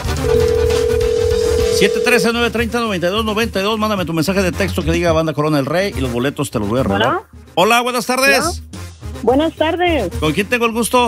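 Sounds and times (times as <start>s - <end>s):
steady electronic telephone line tone as a call is dialed: 0.0s - 2.5s
speech: 1.8s - 11.0s.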